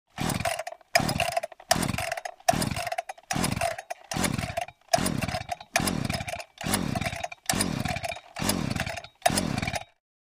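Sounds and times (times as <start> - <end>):
chainsaw: 0.1 - 10.0.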